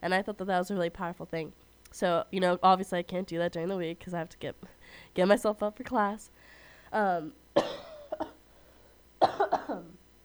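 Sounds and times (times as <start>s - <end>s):
speech: 0.0s - 7.8s
person coughing: 7.6s - 8.4s, 9.2s - 10.0s.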